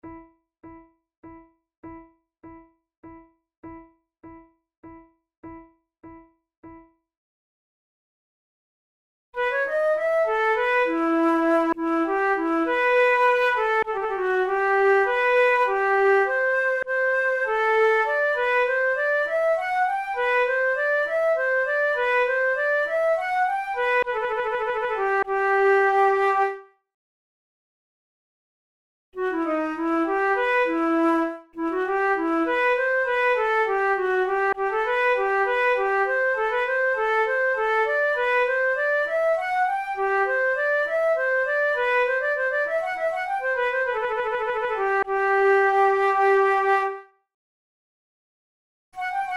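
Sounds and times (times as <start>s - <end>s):
two flutes playing a courante: 9.4s - 26.6s, 29.2s - 47.1s, 49.0s - 49.3s.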